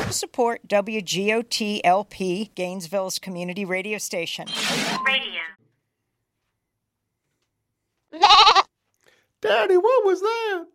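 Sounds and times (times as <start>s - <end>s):
speech: 0.2s - 5.6s, 9.4s - 10.7s
goat bleating: 8.1s - 8.7s.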